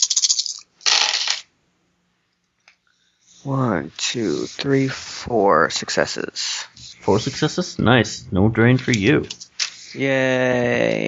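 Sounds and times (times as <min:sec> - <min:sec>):
dice dropping and rattling against a hard tabletop: 0:00.0 - 0:01.5
speech: 0:03.4 - 0:11.0.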